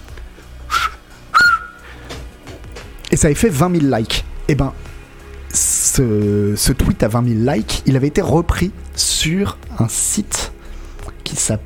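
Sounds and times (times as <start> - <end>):
loud piercing whistles made with fingers in the mouth: 0.7 - 2.0
speech: 3.2 - 4.9, 5.5 - 10.5, 11.3 - 11.6.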